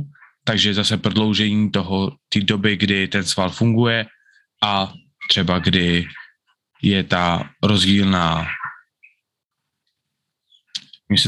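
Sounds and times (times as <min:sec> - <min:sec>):
harsh bird calls: 0:00.0 - 0:00.7, 0:03.4 - 0:09.3, 0:10.4 - 0:11.1
speech: 0:00.5 - 0:06.2, 0:06.8 - 0:08.6, 0:11.1 - 0:11.2
birds squabbling outside a window: 0:03.9 - 0:09.2.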